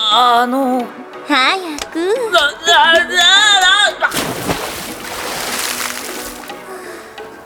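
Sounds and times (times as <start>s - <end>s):
speech: 0.1s - 3.4s
water sloshing as people get into a hot bath at a public health spa: 3.9s - 7.4s.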